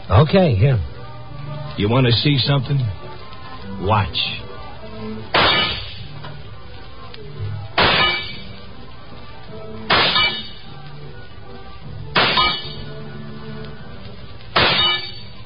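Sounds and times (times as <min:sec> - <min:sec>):
speech: 0:00.1 - 0:00.9, 0:01.8 - 0:03.0, 0:03.8 - 0:04.4
bullets clanging on metal targets in a carnival shooting gallery: 0:05.4 - 0:06.0, 0:07.8 - 0:08.4, 0:09.9 - 0:10.6, 0:12.2 - 0:12.8, 0:14.6 - 0:15.3
rifle shots in a carnival shooting gallery: 0:05.4 - 0:06.0, 0:07.8 - 0:08.4, 0:12.2 - 0:12.8, 0:14.6 - 0:15.2.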